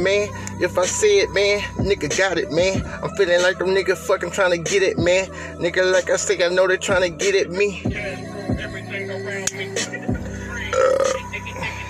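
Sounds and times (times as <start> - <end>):
speech: 0.0 - 10.0
loud rough throaty burp: 10.7 - 11.2.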